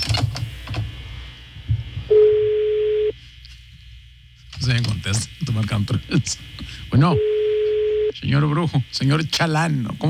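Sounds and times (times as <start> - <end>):
ringback tone over a phone line: 2.1 - 3.1, 7.2 - 8.1
speech: 4.7 - 7.3, 8.2 - 10.0.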